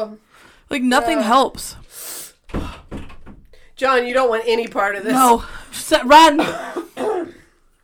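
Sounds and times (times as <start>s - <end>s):
speech: 0.0s - 2.2s, 3.8s - 6.8s
person coughing: 6.3s - 7.6s.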